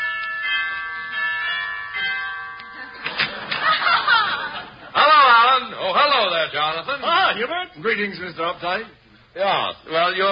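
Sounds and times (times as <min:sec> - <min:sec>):
doorbell chiming: 0:00.0 - 0:04.4
laughter: 0:02.7 - 0:05.1
bright noisy clatter: 0:02.8 - 0:04.6
speech: 0:06.6 - 0:10.2.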